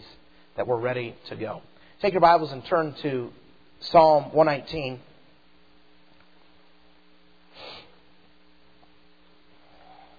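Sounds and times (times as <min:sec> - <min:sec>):
steady low electrical hum: 0:00.0 - 0:10.1
speech: 0:00.6 - 0:05.1
quick nasal sniffle: 0:07.5 - 0:08.0.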